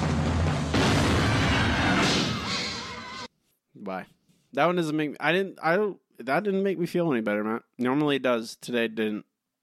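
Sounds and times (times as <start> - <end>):
cannon firing sound effect: 0.1 - 2.7
speech: 3.9 - 9.3.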